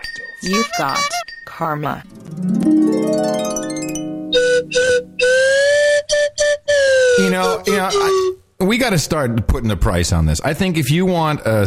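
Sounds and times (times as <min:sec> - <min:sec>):
speech: 0:00.4 - 0:03.6, 0:07.2 - 0:11.6
slide whistle solo: 0:04.3 - 0:08.4.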